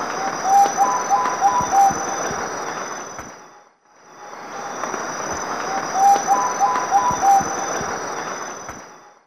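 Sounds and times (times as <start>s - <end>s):
Myrmothera campanisona song variant in the Eastern Lowlands of South America: 0.2s - 2.3s, 5.7s - 8.4s.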